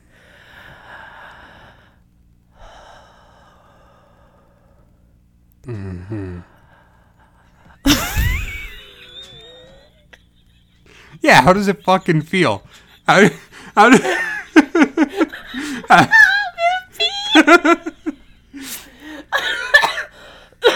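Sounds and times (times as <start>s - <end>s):
long slow deep breaths in and out: 0.0s - 7.8s, 18.5s - 19.3s, 20.1s - 20.6s
speech: 5.6s - 6.5s, 11.2s - 14.2s, 15.9s - 16.2s
laughter: 7.8s - 11.0s, 11.6s - 18.4s.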